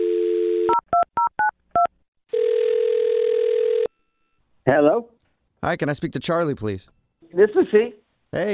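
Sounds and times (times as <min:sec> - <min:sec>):
telephone dial tone: 0:00.0 - 0:00.8, 0:02.3 - 0:03.9
speech: 0:04.7 - 0:08.5.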